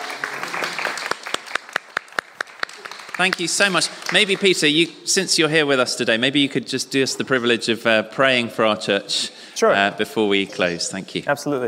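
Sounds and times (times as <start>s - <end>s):
audience applause in a church: 0.0s - 5.0s
speech: 3.2s - 11.6s.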